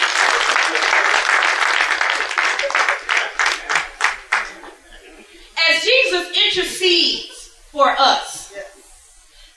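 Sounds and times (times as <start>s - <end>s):
audience clapping: 0.0s - 5.2s
laughter: 0.0s - 8.0s.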